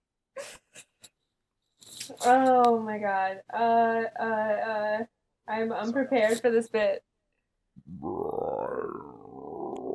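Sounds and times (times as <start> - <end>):
speech: 2.2 - 7.1
voice imitating stomach growl: 7.8 - 9.9.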